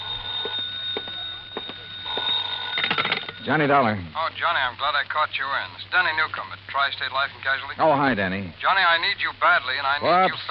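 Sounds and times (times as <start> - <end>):
telephone ringing: 0.0 - 4.0
speech: 3.4 - 10.4.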